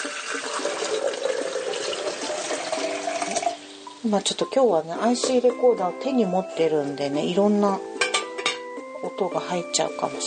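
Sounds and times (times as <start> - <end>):
hot water pouring from a coffee kettle into a pot: 0.0 - 4.0
speech: 4.0 - 7.9, 9.1 - 10.2.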